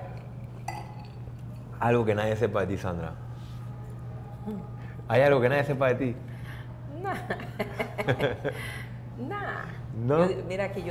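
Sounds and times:
glasses clinking in a toast: 0:00.0 - 0:01.8
steady low hum of noise: 0:00.0 - 0:10.8
speech: 0:01.8 - 0:03.3, 0:04.4 - 0:06.3, 0:07.0 - 0:10.8
laughter: 0:07.2 - 0:08.8.

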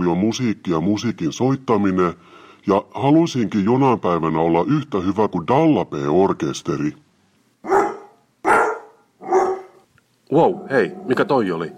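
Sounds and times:
speech: 0:00.0 - 0:07.0, 0:10.4 - 0:11.7
dog barking: 0:07.6 - 0:09.8.

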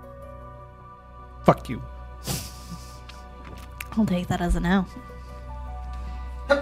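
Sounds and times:
speech: 0:01.4 - 0:02.5, 0:04.0 - 0:05.2
person sneezing: 0:02.2 - 0:03.0.

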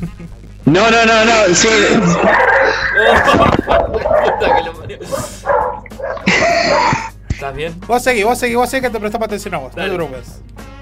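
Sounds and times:
speech: 0:00.0 - 0:05.4, 0:06.4 - 0:10.6
dogs barking and yipping: 0:01.6 - 0:07.2
people laughing: 0:01.6 - 0:07.4.

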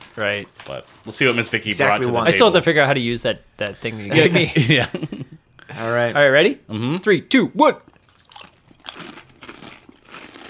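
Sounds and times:
speech: 0:00.2 - 0:07.9
laughter: 0:04.1 - 0:05.4
crisp chip being bitten and chewed: 0:07.9 - 0:10.4.

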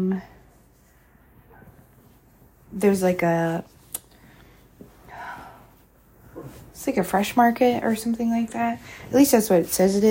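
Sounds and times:
speech: 0:00.0 - 0:00.4, 0:02.7 - 0:03.7, 0:06.4 - 0:10.0
low steady background hum: 0:00.0 - 0:10.0
faint dog barking: 0:01.4 - 0:01.8.

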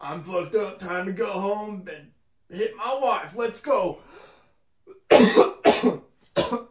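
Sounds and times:
speech: 0:00.0 - 0:04.3, 0:05.2 - 0:06.6
wet rasping smoker's cough: 0:04.9 - 0:06.6.

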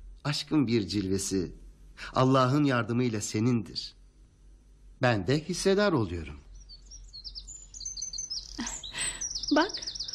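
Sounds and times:
speech: 0:00.2 - 0:04.0, 0:05.0 - 0:06.4, 0:09.6 - 0:09.8
birds chirping: 0:05.0 - 0:10.1.

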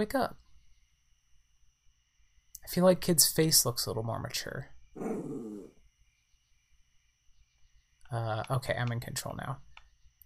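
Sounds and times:
speech: 0:00.0 - 0:00.4, 0:02.6 - 0:04.7, 0:08.1 - 0:09.7
video game dog growling: 0:05.0 - 0:05.8.

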